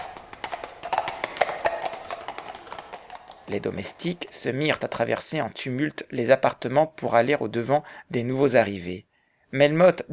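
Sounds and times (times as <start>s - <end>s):
horses' hooves clopping along a paved avenue: 0.0s - 4.4s
speech: 3.5s - 10.1s.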